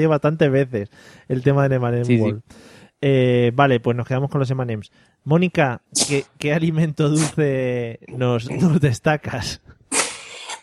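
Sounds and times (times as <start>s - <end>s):
speech: 0.0s - 9.8s
dog with a cold sneezing: 6.0s - 6.3s, 7.2s - 7.4s, 9.9s - 10.6s.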